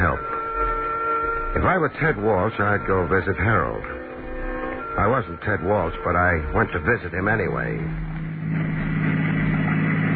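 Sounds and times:
engine drone of a car being driven at night: 0.0s - 10.1s
speech: 1.6s - 4.1s, 5.0s - 8.8s.

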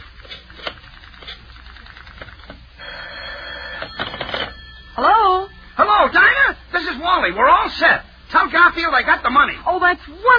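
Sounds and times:
rotary phone dialing clicks: 0.2s - 2.6s
telephone ringing: 0.8s - 7.8s
speech: 5.0s - 10.3s.

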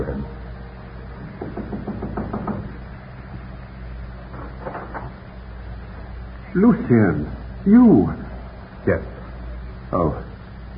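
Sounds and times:
low steady hum: 0.0s - 10.7s
rapid knocking on a door: 1.2s - 2.8s
speech: 6.6s - 8.2s, 8.8s - 9.2s, 9.9s - 10.3s.

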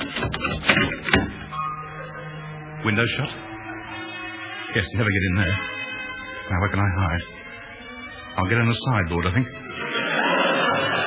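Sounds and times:
metal door bolt being slid shut: 0.0s - 1.7s
speech: 2.8s - 3.5s, 4.7s - 5.8s, 6.5s - 7.3s, 8.4s - 9.6s
laughter: 9.6s - 11.0s.

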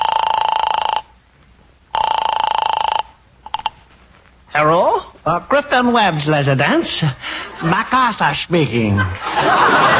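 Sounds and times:
telephone ringing after a number is dialed: 0.0s - 1.2s, 1.9s - 3.8s
speech: 4.6s - 9.9s
laughter: 7.2s - 9.9s.

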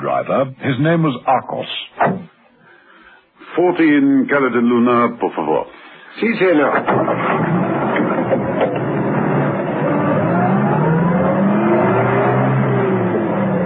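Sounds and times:
speech: 0.2s - 2.3s, 3.5s - 7.7s
taxi car engine accelerating through narrow streets: 6.8s - 13.6s.

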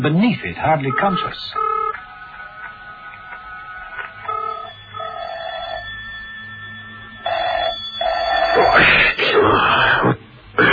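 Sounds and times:
speech: 0.0s - 1.6s
harsh broadband noise: 0.0s - 10.7s
car telephone ringing: 0.7s - 8.8s.

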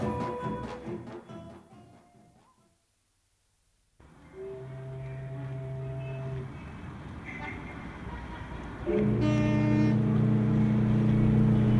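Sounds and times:
busy city street traffic near a harbor: 4.0s - 11.7s
loud sustained droning tone from a vehicle: 4.0s - 11.7s.

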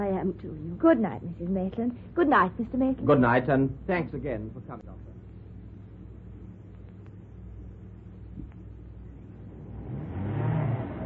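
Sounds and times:
speech: 0.2s - 5.1s
car engine rumbling as the vehicle drives and slows to a halt: 8.0s - 11.0s.

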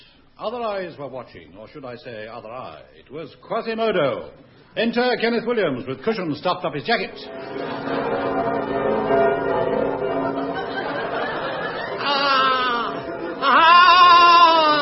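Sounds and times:
speech: 0.4s - 9.4s
church bells ringing: 7.1s - 14.7s
audience laughter: 7.3s - 14.2s.

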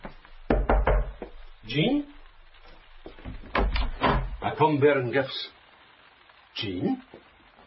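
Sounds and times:
knocking on a door: 0.5s - 1.4s
speech: 1.7s - 2.1s, 4.6s - 5.5s, 6.6s - 7.2s.

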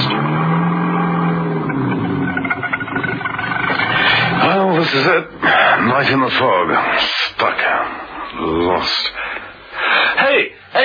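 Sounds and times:
car engine droning as the vehicle crawls slowly through thick fog: 0.0s - 6.7s
speech: 4.9s - 9.2s.

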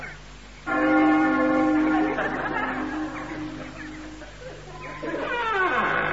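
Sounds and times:
large door bell ringing: 0.7s - 4.4s
laughter: 0.9s - 5.9s.

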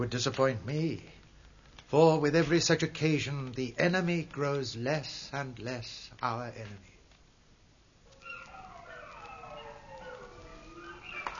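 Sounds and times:
speech: 0.0s - 1.2s, 1.9s - 6.9s
several wolves howling on a chilly clear night: 8.1s - 11.3s.

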